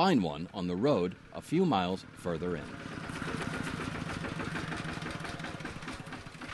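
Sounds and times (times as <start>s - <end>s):
speech: 0.0s - 3.0s
heavy tractor engine running: 0.0s - 6.5s.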